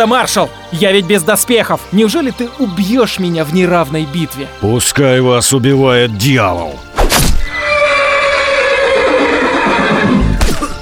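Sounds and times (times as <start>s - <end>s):
speech: 0.0s - 7.2s
horse wounded by a thrown spear neighing: 7.4s - 10.6s.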